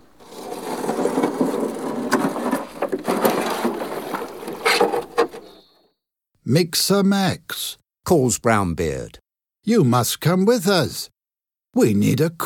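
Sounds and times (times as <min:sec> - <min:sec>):
small wooden rowing boat creaking and knocking: 0:00.0 - 0:05.6
speech: 0:06.5 - 0:12.4.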